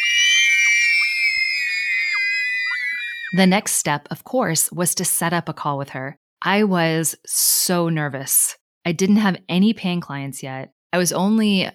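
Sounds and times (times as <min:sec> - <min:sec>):
young girl screaming excitedly: 0:00.0 - 0:03.4
speech: 0:03.3 - 0:11.7.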